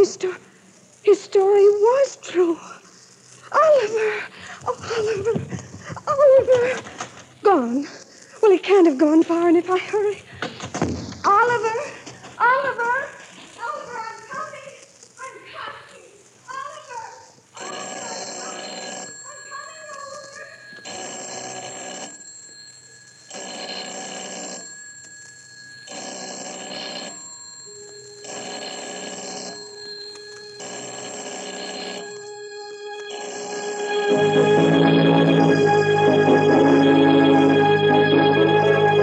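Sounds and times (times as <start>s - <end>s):
speech: 0.0s - 2.8s, 3.5s - 13.2s
telephone bell ringing: 17.6s - 39.0s.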